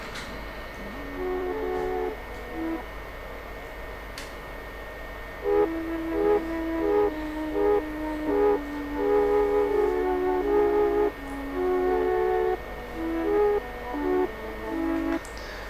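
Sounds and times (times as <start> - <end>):
breathy flute-like Mellotron keyboard playing a gentle melodic intro: 0.8 - 3.0, 5.4 - 15.3.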